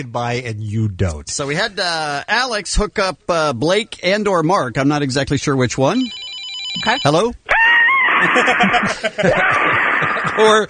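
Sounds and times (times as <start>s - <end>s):
speech: 0.0s - 6.2s, 6.8s - 7.5s, 8.2s - 10.6s
parrot squawking and screeching over a telephone line: 7.5s - 8.5s
laughter: 7.9s - 10.6s.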